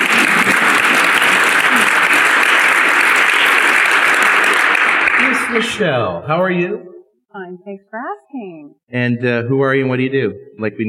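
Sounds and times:
sizable audience applause: 0:00.0 - 0:06.0
speech: 0:05.5 - 0:10.8.

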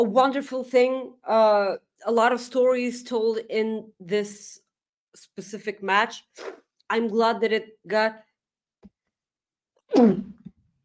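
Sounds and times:
speech: 0:00.0 - 0:04.6, 0:05.2 - 0:08.3, 0:09.9 - 0:10.4
person sneezing loudly: 0:09.9 - 0:10.5.

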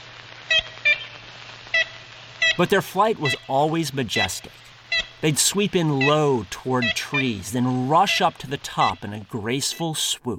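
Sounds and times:
ivory-billed woodpecker honking call: 0:00.5 - 0:01.2, 0:01.8 - 0:03.5, 0:04.2 - 0:05.3, 0:05.9 - 0:09.0
speech: 0:02.6 - 0:10.3.

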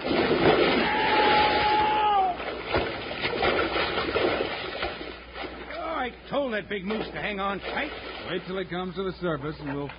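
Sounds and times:
big logs splashing into a lake: 0:00.0 - 0:06.1, 0:06.7 - 0:08.7
speech: 0:06.5 - 0:09.9.

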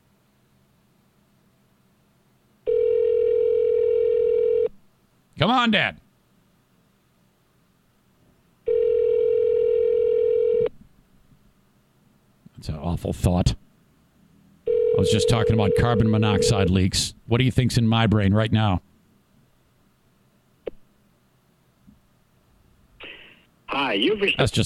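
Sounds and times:
telephone ringback tone while calling: 0:02.7 - 0:04.7, 0:08.7 - 0:10.7, 0:14.7 - 0:16.7
speech: 0:05.4 - 0:06.0, 0:13.0 - 0:13.6, 0:15.0 - 0:18.9, 0:24.2 - 0:24.6.

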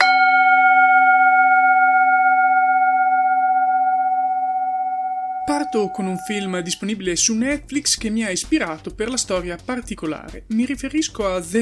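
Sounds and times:
single gong struck and ringing with bright metallic tone: 0:00.0 - 0:07.3
speech: 0:05.7 - 0:11.5.

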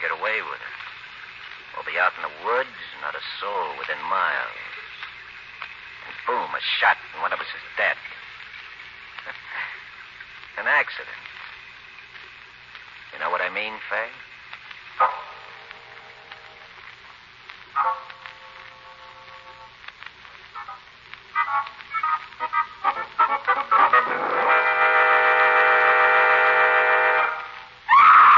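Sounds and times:
steady hum and static: 0:00.0 - 0:28.3
speech: 0:00.4 - 0:00.8, 0:01.8 - 0:04.8, 0:06.2 - 0:08.1, 0:10.6 - 0:11.2, 0:13.2 - 0:14.3, 0:15.0 - 0:15.3
faint cries: 0:27.9 - 0:28.3
person screaming: 0:27.9 - 0:28.3.

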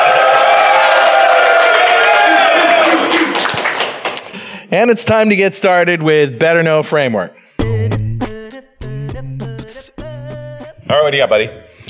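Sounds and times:
live crowd cheering and whooping: 0:00.0 - 0:03.5
clapping: 0:00.1 - 0:04.4
speech: 0:04.7 - 0:07.4, 0:10.9 - 0:11.6.

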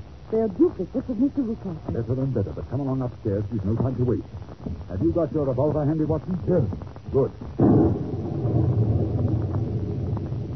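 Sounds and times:
speech: 0:00.3 - 0:08.1
rolling thunder from a nearby lightning strike: 0:06.4 - 0:10.5.

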